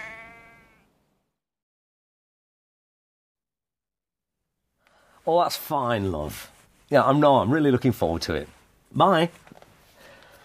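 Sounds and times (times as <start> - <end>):
lamb bleating: 0.0 - 0.9
speech: 5.2 - 9.6.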